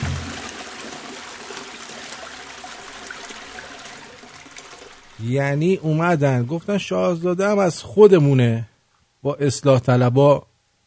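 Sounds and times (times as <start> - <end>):
toilet flushing: 0.0 - 6.9
speech: 5.2 - 10.8.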